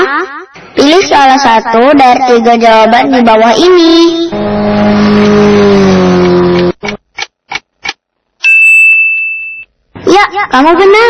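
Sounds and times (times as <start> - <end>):
speech: 0.2 - 5.6, 10.4 - 11.0
loud motorcycle engine revving: 4.3 - 7.0
quick sharp clicks: 6.6 - 8.0
bright ringing chime: 8.4 - 9.7.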